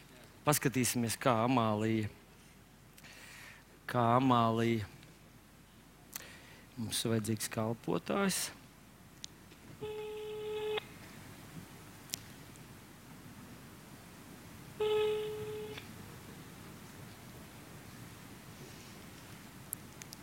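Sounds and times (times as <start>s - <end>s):
low hiss: 0.0s - 20.2s
speech: 0.4s - 2.2s, 3.9s - 5.0s, 6.8s - 8.6s
telephone ringback tone: 9.8s - 10.8s, 14.8s - 15.9s.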